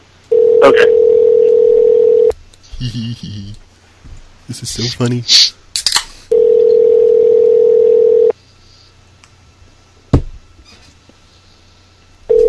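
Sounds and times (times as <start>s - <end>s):
phone line ringback with a steady buzzy tone: 0.3s - 2.3s, 6.3s - 8.3s
speech: 0.6s - 1.0s, 2.8s - 3.7s, 4.5s - 5.6s
people laughing: 2.7s - 3.6s.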